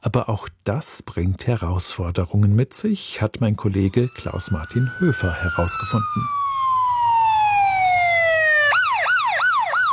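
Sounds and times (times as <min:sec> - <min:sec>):
speech: 0:00.0 - 0:06.8
engine and road noise: 0:03.5 - 0:09.9
ambulance siren on an emergency run: 0:03.6 - 0:09.9.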